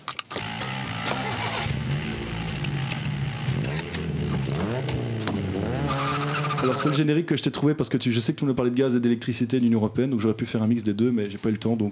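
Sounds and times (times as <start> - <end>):
sharp clicks: 0.0 - 6.9
car engine revving: 0.4 - 7.0
speech: 6.7 - 11.9.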